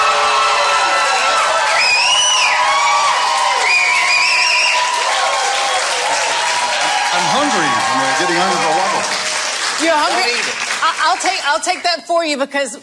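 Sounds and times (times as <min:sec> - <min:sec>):
whoops and cheers: 0:00.0 - 0:09.6
audience applause at a live award presentation: 0:00.0 - 0:11.9
speech: 0:09.9 - 0:12.8.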